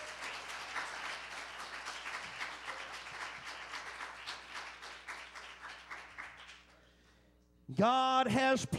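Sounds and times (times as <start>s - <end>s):
church audience applause in praise of God: 0.0s - 6.8s
speech: 7.7s - 8.7s.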